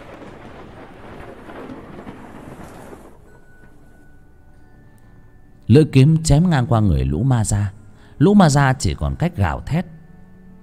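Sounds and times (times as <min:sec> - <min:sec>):
loud sustained rolling thunder: 0:00.0 - 0:04.3
rain hiss: 0:00.0 - 0:04.4
speech: 0:05.7 - 0:09.9.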